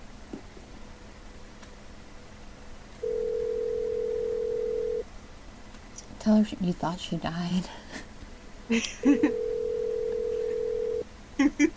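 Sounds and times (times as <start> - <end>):
electronic phone ringing tone of an unanswered call: 3.0 - 5.0, 9.2 - 11.0
speech: 6.2 - 7.9, 8.7 - 9.4, 11.4 - 11.7.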